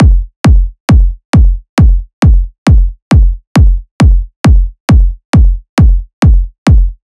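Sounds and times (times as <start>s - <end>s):
techno kick drum loop: 0.0s - 7.0s.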